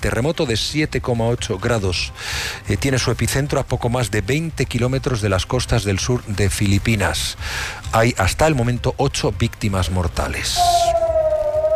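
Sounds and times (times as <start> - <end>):
speech: 0.0 - 11.0
air raid siren wailing at dawn in Israel after missile interception: 10.6 - 11.7.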